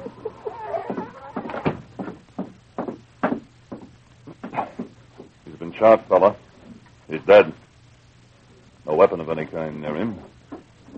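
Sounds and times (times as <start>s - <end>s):
brief faint door creak: 0.4s - 1.9s
uneven wooden knocks and bumps of a door: 0.9s - 5.3s
speech: 5.8s - 6.4s, 7.1s - 7.6s, 9.0s - 10.3s.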